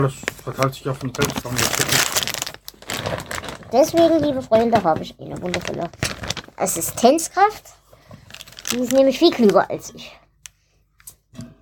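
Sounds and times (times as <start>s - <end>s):
speech: 0.0s - 2.3s, 3.7s - 7.8s, 8.7s - 10.2s
plastic bag crinkling and rustling: 0.1s - 4.7s, 5.3s - 7.3s, 8.1s - 9.8s.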